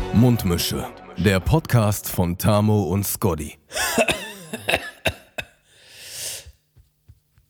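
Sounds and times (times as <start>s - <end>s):
speech: 0.1s - 4.8s
throat clearing into the microphone: 3.8s - 5.6s
breathy exhale: 5.7s - 6.5s.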